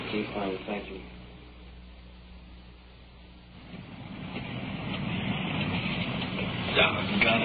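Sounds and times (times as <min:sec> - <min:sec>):
speech: 0:00.1 - 0:01.2
heavy rain: 0:03.6 - 0:07.4.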